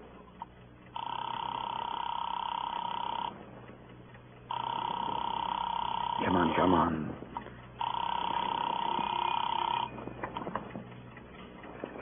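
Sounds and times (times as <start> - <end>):
telephone line ringing in the earpiece: 0.9 - 3.4, 4.5 - 6.9, 7.8 - 10.8
speech: 6.7 - 7.2.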